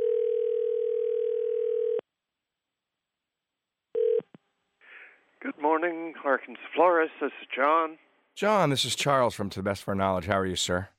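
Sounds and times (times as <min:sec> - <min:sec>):
telephone ringback tone: 0:00.0 - 0:02.0, 0:04.0 - 0:04.2
speech: 0:05.6 - 0:10.9.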